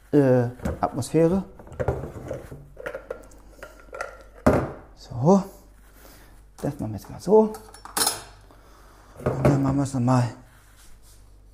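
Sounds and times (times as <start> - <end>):
speech: 0.1 - 2.0, 5.2 - 5.5, 7.0 - 7.8, 9.2 - 10.4
dishes and cutlery clattering in a kitchen: 1.6 - 4.8, 7.5 - 8.4.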